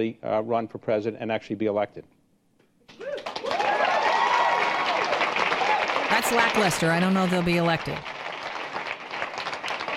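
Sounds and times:
speech: 0.0 - 2.2, 6.3 - 8.1
cheers and whoops: 2.9 - 6.1
audience applause: 3.0 - 9.9.

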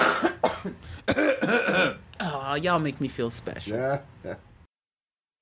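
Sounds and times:
several people coughing and clearing throats: 0.0 - 2.1
speech: 2.6 - 4.5.

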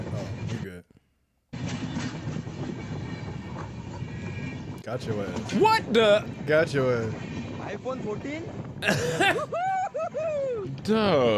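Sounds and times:
train rumbling loudly along the rails: 1.6 - 8.8
speech: 4.9 - 9.7, 10.8 - 11.3
laughter: 8.8 - 10.7.

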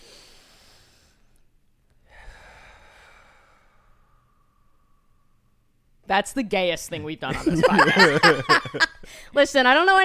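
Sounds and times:
deep breath: 0.0 - 1.4, 2.0 - 5.6, 9.0 - 9.3
speech: 6.1 - 10.0
laughter: 7.0 - 9.0.

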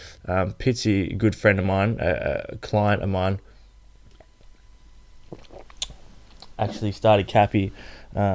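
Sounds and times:
speech: 0.2 - 3.5, 6.6 - 8.3
person sipping mineral water: 5.2 - 6.6.

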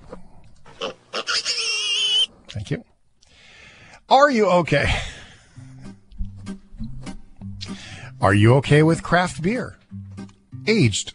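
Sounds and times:
person imitating high-pitched squealing pig oink: 0.8 - 2.3
speech: 2.6 - 2.9, 4.1 - 5.1, 8.2 - 9.8, 10.7 - 11.1.

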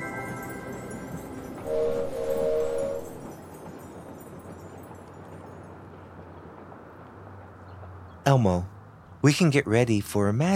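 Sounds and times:
cartoonish train sound effect whistle: 1.7 - 3.2
speech: 8.3 - 8.7, 9.2 - 10.5.

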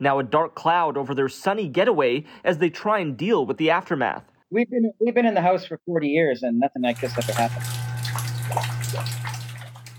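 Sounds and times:
speech: 0.0 - 7.9
water gushing and splashing from a burst pipe inside a home: 6.9 - 9.9.

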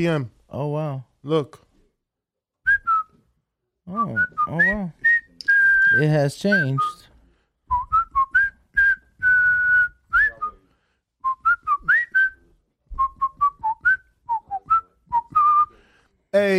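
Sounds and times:
speech: 0.0 - 1.6, 3.9 - 5.1, 5.9 - 7.1, 16.4 - 16.5
person whistling a song: 2.7 - 3.2, 3.9 - 7.0, 7.7 - 10.6, 11.2 - 15.7.

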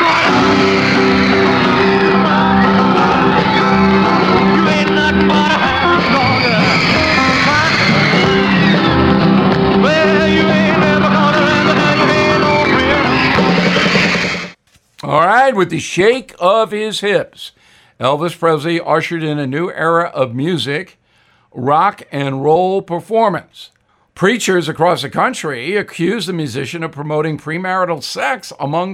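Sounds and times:
girls in a large concert audience screaming at a singer: 0.0 - 14.2
speech: 15.6 - 28.9.

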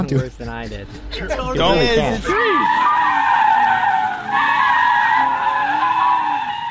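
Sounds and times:
speech: 0.0 - 3.2
heavy Jeep tires squealing in a high-pitched skid: 2.2 - 6.7.

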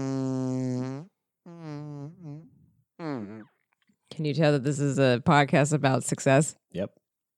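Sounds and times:
person imitating fart sounds with mouth: 0.0 - 3.6
speech: 4.2 - 7.0.

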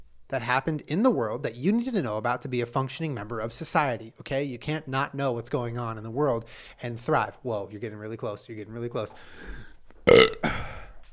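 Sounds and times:
speech: 0.3 - 10.8
loud burp: 10.1 - 10.9.

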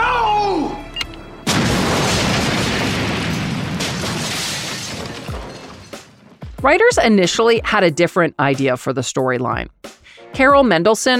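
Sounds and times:
bombs exploding around an apartment complex: 1.4 - 6.6
shattering debris: 1.5 - 6.5
speech: 6.6 - 11.1.

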